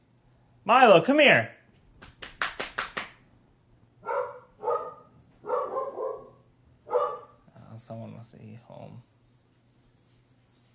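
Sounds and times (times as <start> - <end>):
speech: 0.7 - 2.1, 8.3 - 9.2
sharp clap-like hits: 2.0 - 3.2
dog barking: 4.0 - 7.4.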